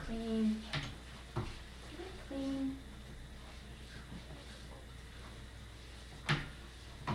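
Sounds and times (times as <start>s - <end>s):
cloth wiping a high chair tray: 0.1s - 7.0s.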